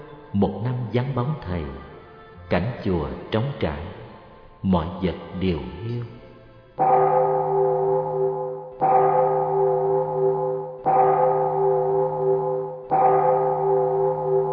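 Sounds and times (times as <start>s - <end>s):
temple bell ringing: 0.0s - 1.1s, 5.9s - 14.5s
speech: 0.3s - 1.9s, 2.5s - 4.0s, 4.6s - 6.2s, 6.8s - 7.2s.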